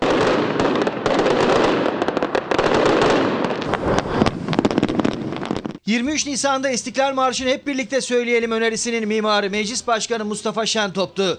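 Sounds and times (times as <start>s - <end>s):
fireworks from the Turkish Grand National Assembly crackling and booming over Ankara: 0.0s - 6.2s
speech: 5.9s - 11.3s.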